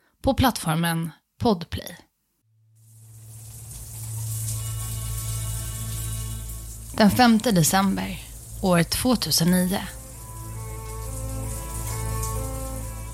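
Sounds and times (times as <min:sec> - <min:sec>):
speech: 0:00.2 - 0:02.1, 0:07.0 - 0:10.0
rain in Mexico drumming on a soaked jacket: 0:02.8 - 0:13.1.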